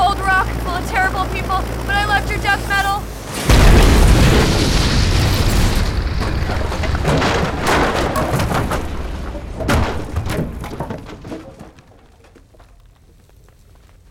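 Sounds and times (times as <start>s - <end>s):
heavy rumble: 0.0s - 14.0s
scattered crackling debris: 0.4s - 14.0s
crash landing boom into a snowdrift: 2.5s - 11.8s.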